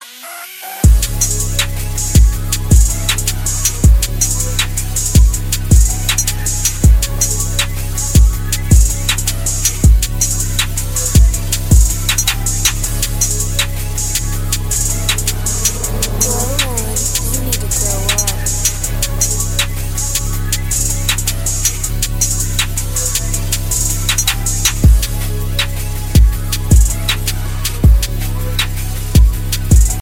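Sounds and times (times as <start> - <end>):
music beat: 0.4 - 29.9.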